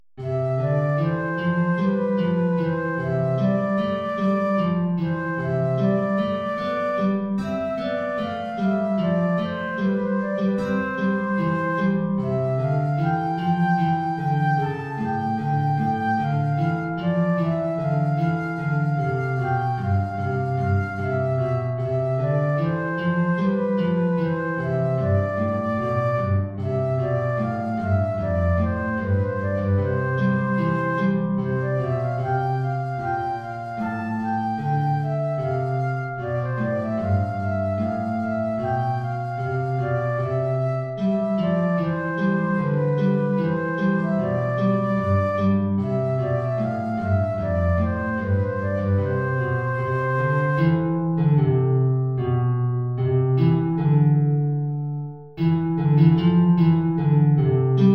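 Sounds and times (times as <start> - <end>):
flute melody in an aria: 0.0 - 57.9
guitar playing in an aria: 0.2 - 57.9.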